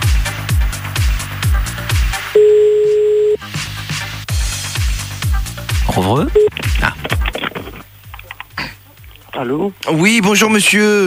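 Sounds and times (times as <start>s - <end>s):
rhythmic music with thumping beats: 0.0s - 10.2s
telephone ring tone on the line: 2.4s - 3.4s
speech: 6.0s - 6.5s, 9.4s - 11.0s.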